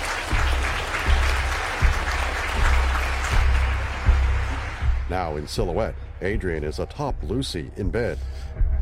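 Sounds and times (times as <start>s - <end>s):
one person applauding wearily: 0.0s - 5.0s
speech: 5.1s - 8.7s.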